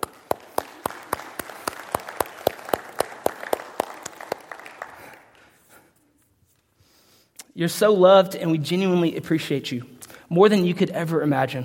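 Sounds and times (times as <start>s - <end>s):
audience clapping in steady rhythmic unison: 0.0s - 6.0s
speech: 7.6s - 11.6s.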